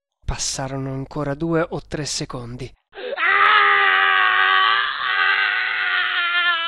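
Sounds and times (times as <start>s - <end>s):
speech: 0.4s - 2.8s
man screaming in agony as fire burns his flesh: 3.0s - 6.6s.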